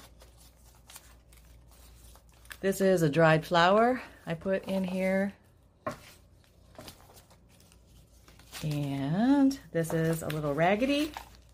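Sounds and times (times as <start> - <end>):
pages of a Victorian-style junk journal being flipped through: 0.0 - 2.8, 5.9 - 11.5
speech: 2.6 - 5.4, 8.6 - 11.3.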